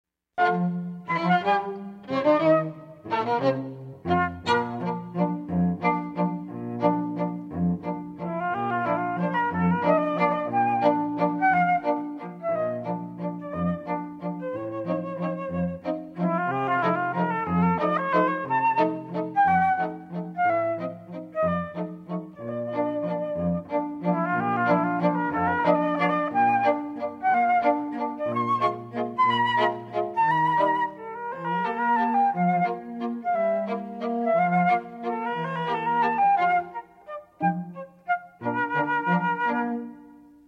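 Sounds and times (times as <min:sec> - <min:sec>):
flute trio playing: 0:00.4 - 0:07.3, 0:08.2 - 0:40.4.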